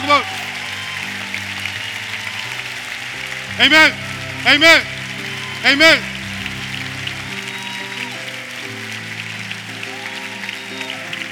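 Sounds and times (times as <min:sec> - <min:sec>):
audience cheering and applauding: 0:00.0 - 0:11.2
speech: 0:03.6 - 0:04.9, 0:05.6 - 0:06.1.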